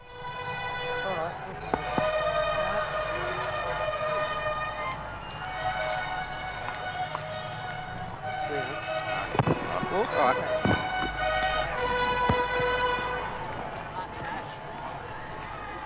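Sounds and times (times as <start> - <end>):
brassy fanfare of sustained ringing notes: 0.0 - 13.8
busy outdoor crowd of thousands: 0.0 - 15.8
people shouting: 0.4 - 15.8
sharp bangs: 8.6 - 13.6.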